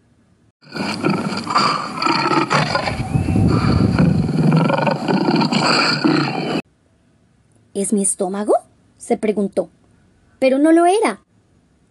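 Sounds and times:
lion growling and roaring: 0.6s - 6.6s
speech: 7.8s - 9.8s, 10.4s - 11.2s.

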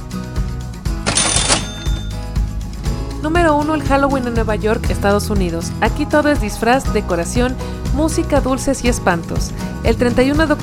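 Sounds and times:
cash register bright ring: 1.0s - 2.3s
cash register mechanical key clacks: 1.1s - 2.2s
speech: 3.2s - 10.6s.

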